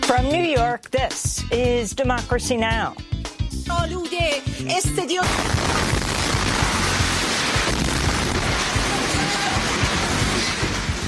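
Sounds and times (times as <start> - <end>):
speech: 0.2 - 5.9
crackling debris noise after explosion: 5.2 - 11.0
loud explosion from bombing of TV station headquarters: 5.2 - 11.0.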